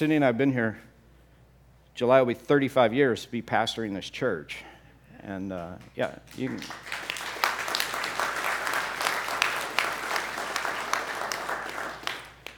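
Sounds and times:
speech: 0.0 - 0.9, 2.0 - 7.0
church congregation applauding during a Sunday service: 6.3 - 12.5.

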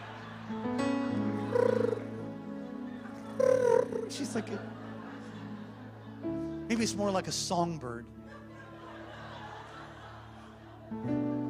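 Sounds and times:
laughter: 0.0 - 7.4, 8.1 - 11.4
voice imitating a woman's soft purring snore: 1.5 - 2.1, 3.4 - 4.1
speech: 4.1 - 4.8, 6.8 - 8.2.

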